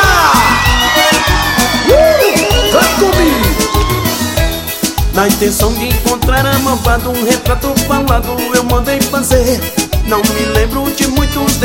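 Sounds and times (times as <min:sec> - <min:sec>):
individual whoops and rising yells: 0:00.0 - 0:04.4
large concert crowd roaring and cheering: 0:00.0 - 0:04.8
speech: 0:05.2 - 0:11.6.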